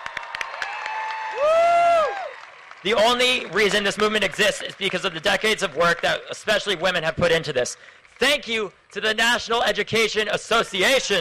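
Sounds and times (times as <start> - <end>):
audience applause and cheering: 0.0 - 6.2
speech: 2.8 - 11.1.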